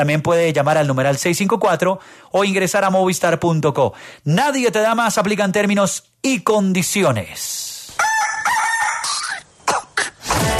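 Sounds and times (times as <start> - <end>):
speech: 0.0 - 7.7
rooster crowing: 8.0 - 9.5.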